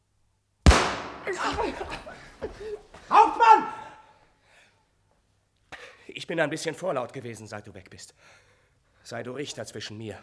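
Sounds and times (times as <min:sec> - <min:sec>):
gunshot fired by a robber captain: 0:00.7 - 0:02.8
laughter: 0:01.0 - 0:04.0
speech: 0:01.3 - 0:03.7, 0:06.2 - 0:10.2.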